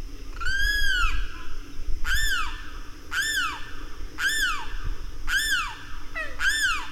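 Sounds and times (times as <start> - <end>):
Limpkin calling kreow: 0.3 - 6.9.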